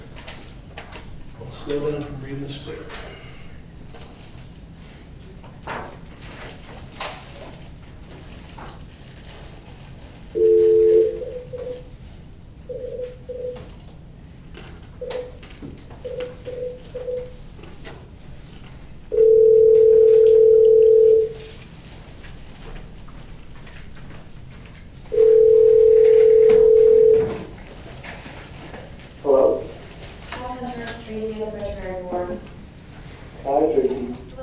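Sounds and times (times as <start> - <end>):
speech: 1.6 - 3.1
long steady telephone tones while placing a call: 10.4 - 11.9, 12.7 - 13.7, 16.0 - 17.4, 19.1 - 21.4, 25.1 - 27.5
short clear telephone keypad beeps: 10.4 - 11.9, 12.7 - 13.7, 15.0 - 15.4, 16.0 - 17.4, 19.2 - 21.4, 25.2 - 27.4.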